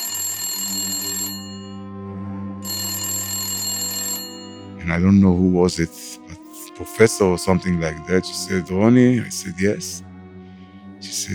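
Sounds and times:
telephone ringing in a bedroom: 0.0s - 1.8s, 2.7s - 4.7s
speech: 4.8s - 6.2s, 6.8s - 10.1s, 11.2s - 11.3s.

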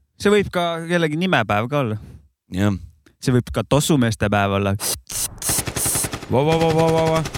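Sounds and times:
speech: 0.2s - 5.2s, 6.3s - 7.3s
Kalashnikov automatic rifle gunfire: 5.4s - 7.3s.

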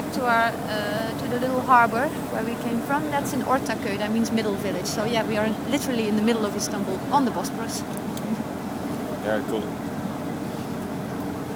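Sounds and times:
boat engine running on the Bosporus in Istanbul: 0.0s - 11.5s
speech: 0.2s - 8.2s, 9.3s - 9.9s.

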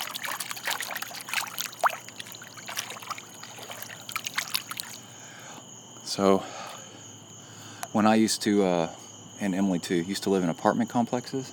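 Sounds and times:
soft irregular splashes and trickles: 0.0s - 5.2s
water sloshing and lapping in a backyard swimming pool: 0.0s - 5.2s
faint steady hum: 0.0s - 11.5s
speech: 6.2s - 6.6s, 7.9s - 11.5s.

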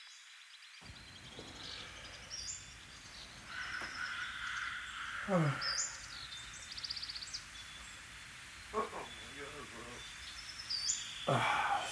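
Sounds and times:
bird: 0.0s - 11.9s.

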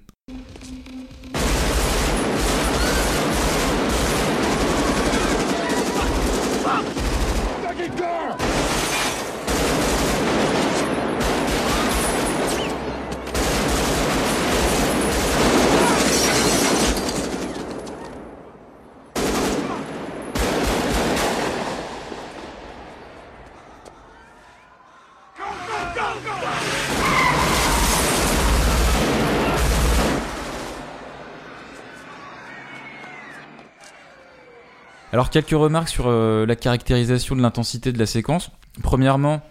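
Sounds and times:
heavy automatic gunfire in a film shootout: 1.3s - 18.3s, 19.2s - 22.6s, 26.5s - 31.0s
people shouting: 2.6s - 3.4s, 4.4s - 9.2s, 15.6s - 16.8s, 23.6s - 28.2s, 31.2s - 35.2s
speech: 35.2s - 39.5s.

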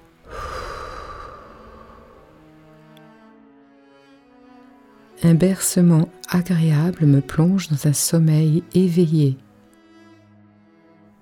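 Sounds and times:
calm slow breathing during a guided relaxation exercise: 0.0s - 3.4s
speech: 5.2s - 9.4s.

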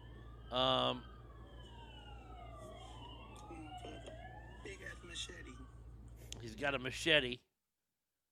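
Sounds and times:
police car siren whoop: 0.0s - 6.1s
speech: 0.5s - 1.1s, 3.9s - 7.5s.

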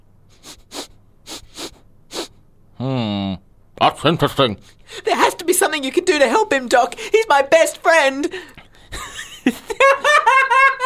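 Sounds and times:
person sniffing: 0.3s - 2.4s
speech: 4.0s - 8.6s
laughter: 8.9s - 10.8s.

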